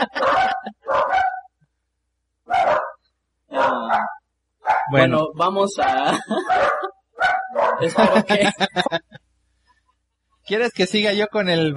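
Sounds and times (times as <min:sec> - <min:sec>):
laughter: 0:00.0 - 0:00.9, 0:06.0 - 0:06.9, 0:07.8 - 0:09.2
dog barking: 0:00.0 - 0:01.5, 0:02.5 - 0:05.0, 0:05.8 - 0:08.3
speech: 0:04.9 - 0:06.9, 0:07.8 - 0:09.1, 0:10.5 - 0:11.7.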